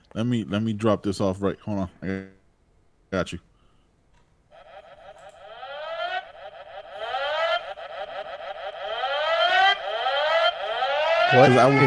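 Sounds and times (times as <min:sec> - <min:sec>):
speech: 0:00.1 - 0:02.4, 0:03.1 - 0:03.5, 0:11.3 - 0:11.8
police siren wailing in rising sweeps: 0:04.5 - 0:11.8.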